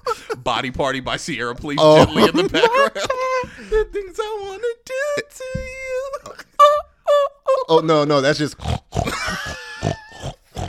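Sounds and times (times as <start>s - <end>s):
speech: 0.5s - 5.7s, 7.7s - 8.7s
laughter: 1.8s - 3.8s, 9.0s - 10.6s
pig oinking and grunting: 8.5s - 10.6s.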